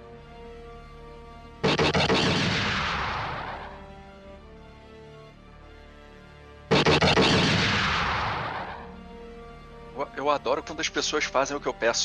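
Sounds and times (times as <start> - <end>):
artillery shots fired from a ship at a hill: 1.6 - 3.9, 6.7 - 9.0
speech: 10.3 - 12.0.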